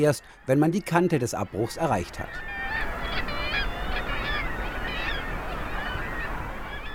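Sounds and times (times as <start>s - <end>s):
speech: 0.0s - 3.0s
seabirds honking and squawking at a cliff colony: 0.0s - 6.9s
surf roaring at a sea cliff: 1.4s - 6.9s.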